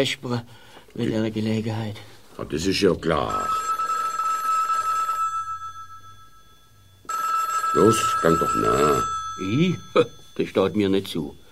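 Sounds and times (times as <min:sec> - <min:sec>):
speech: 0:00.0 - 0:03.6, 0:07.7 - 0:11.4
telephone bell ringing: 0:03.0 - 0:11.4.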